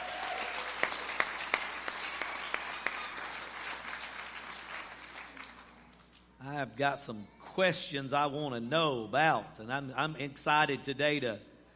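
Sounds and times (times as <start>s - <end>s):
room full of people applauding: 0.0s - 6.2s
speech: 6.6s - 11.5s.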